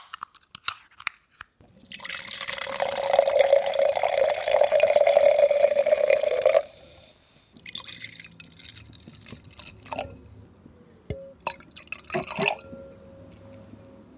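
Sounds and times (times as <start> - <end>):
liquid dripping: 1.7 - 6.7, 7.5 - 14.1
fizzy drink poured into a glass: 1.7 - 6.9, 7.5 - 10.2, 11.4 - 14.0
small clinks of a glass: 11.1 - 13.7.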